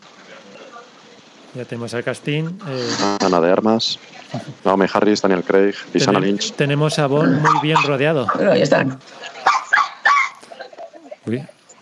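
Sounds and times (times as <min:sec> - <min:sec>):
murmur of voices in a bar: 0:00.0 - 0:11.8
speech: 0:01.5 - 0:09.3, 0:11.2 - 0:11.6
dog barking sharply: 0:07.2 - 0:08.6, 0:09.4 - 0:10.4.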